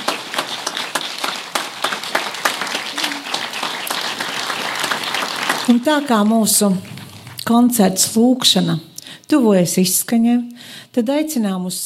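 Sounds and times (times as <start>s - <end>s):
audience applauding after choir singing: 0.0s - 7.4s
speech: 5.7s - 11.8s.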